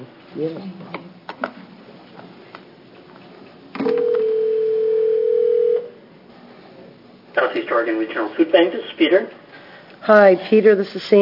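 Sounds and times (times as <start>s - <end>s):
speech: 0.0s - 1.5s, 7.6s - 9.4s, 10.1s - 11.1s
telephone dial tone: 3.8s - 5.9s.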